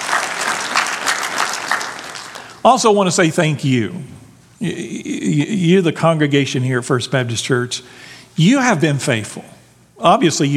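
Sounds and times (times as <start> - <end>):
church audience clapping: 0.0 - 2.6
speech: 2.6 - 10.5.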